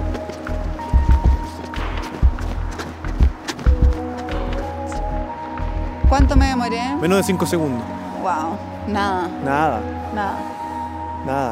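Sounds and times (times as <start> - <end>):
hurried footsteps running across pavement of a city avenue: 0.2 - 4.0
speech: 6.2 - 10.5, 11.2 - 11.5.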